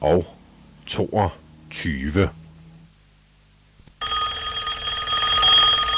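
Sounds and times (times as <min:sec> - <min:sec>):
speech: 0:00.0 - 0:02.4
old-fashioned American telephone bell ringing: 0:04.0 - 0:05.9.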